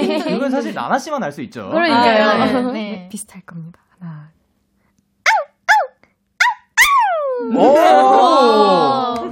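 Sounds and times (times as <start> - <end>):
laughter: 0.0 - 0.8
speech: 0.2 - 4.4, 7.4 - 9.2
household pet dog barking: 5.3 - 7.0
household pet dog howling: 5.4 - 9.0.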